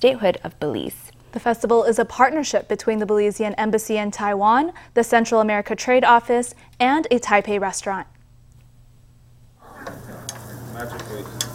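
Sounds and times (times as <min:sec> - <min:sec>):
speech: 0:00.0 - 0:08.2
low hum: 0:00.0 - 0:11.5
onions frying and sizzling in a hot pan: 0:09.8 - 0:11.5.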